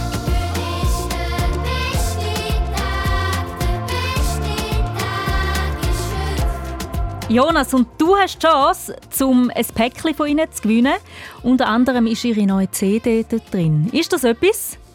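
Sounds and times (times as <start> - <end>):
children's choir singing a bright melody: 0.0 - 6.8
speech: 7.3 - 14.8.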